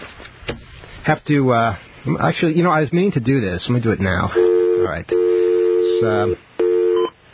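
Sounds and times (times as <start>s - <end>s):
speech: 1.0s - 5.2s, 6.0s - 6.4s
telephone dial tone: 4.4s - 7.1s.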